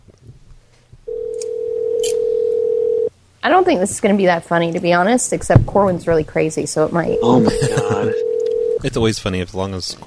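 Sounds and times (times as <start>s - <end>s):
faint noise: 0.0s - 10.0s
telephone dial tone while placing a prank call to a theater number: 1.1s - 3.1s, 8.2s - 8.8s
speech: 3.4s - 10.0s
laughter: 7.2s - 8.2s.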